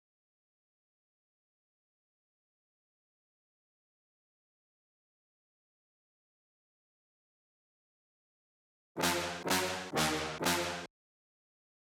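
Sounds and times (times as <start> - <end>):
dry brass fill in F minor: 9.0 - 10.9.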